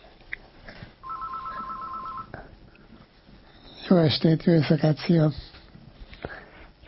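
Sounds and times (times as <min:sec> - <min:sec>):
telephone ringing with a rapid warbling trill: 0:01.0 - 0:02.4
speech: 0:03.9 - 0:05.4.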